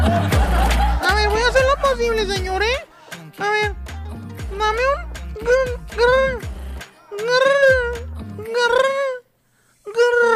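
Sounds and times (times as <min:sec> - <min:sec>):
laughter: 0:00.0 - 0:03.3
speech: 0:01.9 - 0:03.9, 0:04.5 - 0:06.5, 0:07.2 - 0:09.0
voice imitating a puppy whimpering: 0:04.4 - 0:09.3, 0:09.9 - 0:10.3.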